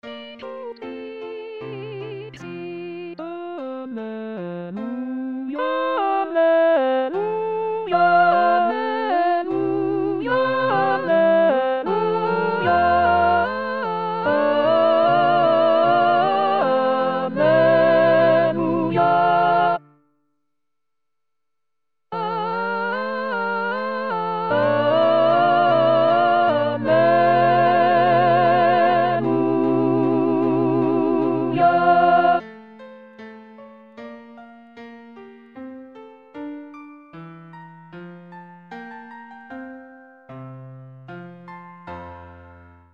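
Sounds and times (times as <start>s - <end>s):
alto voice singing sacred choral piece: 0.0s - 19.9s, 22.1s - 32.4s.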